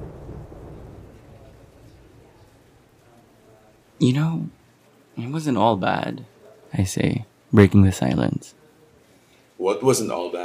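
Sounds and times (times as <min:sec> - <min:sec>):
deep rolling rumble of distant thunder: 0:00.0 - 0:03.0
steady falling rain: 0:00.0 - 0:06.3
speech: 0:04.0 - 0:04.6, 0:05.2 - 0:08.6, 0:09.6 - 0:10.4.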